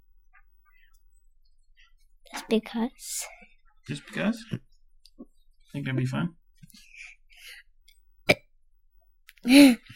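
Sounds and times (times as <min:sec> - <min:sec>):
speech: 0:02.5 - 0:04.7, 0:05.7 - 0:07.6, 0:09.4 - 0:09.9
child burping into microphone: 0:08.3 - 0:08.5.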